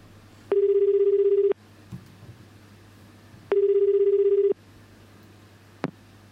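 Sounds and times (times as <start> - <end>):
low hum: 0.0 - 6.3
phone line ringback tone: 0.5 - 1.6, 3.5 - 4.6.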